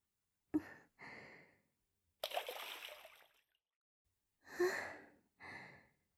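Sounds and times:
hot water poured over the body before a bath: 2.2 - 3.4.

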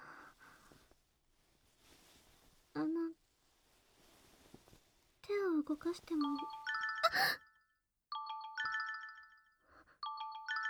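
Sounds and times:
rustling: 0.1 - 6.3
speech: 5.7 - 7.5
smartphone ringtone with a bright repeating electronic melody: 6.2 - 10.6.

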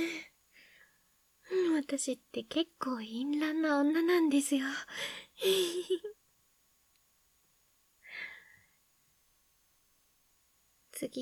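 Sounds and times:
woman breathing heavily with a voiced sighing exhale: 0.0 - 1.6, 4.9 - 5.8, 8.0 - 8.8
speech: 1.9 - 6.2, 11.0 - 11.2.

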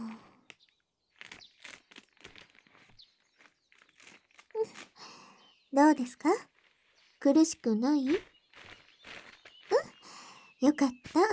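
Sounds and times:
velcro strap being pressed and fastened: 0.5 - 5.2
speech: 5.7 - 6.5, 7.2 - 8.3, 10.6 - 11.3.

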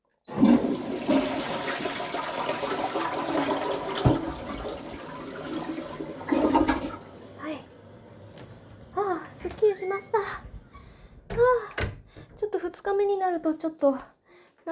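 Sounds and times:
toilet flushing: 0.2 - 9.8
speech: 12.8 - 14.7.

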